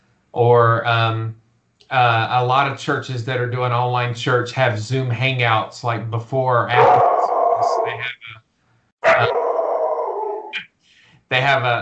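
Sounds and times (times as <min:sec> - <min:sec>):
speech: 0:00.4 - 0:08.4, 0:11.3 - 0:11.8
dog barking: 0:06.8 - 0:08.0, 0:09.0 - 0:10.6.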